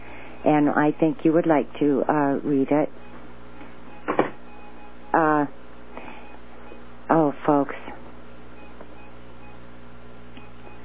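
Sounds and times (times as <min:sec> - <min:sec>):
steady low mechanical hum: 0:00.0 - 0:10.8
speech: 0:00.4 - 0:03.1
faint short electronic printer beeps: 0:03.8 - 0:05.2, 0:08.5 - 0:09.6, 0:10.4 - 0:10.8.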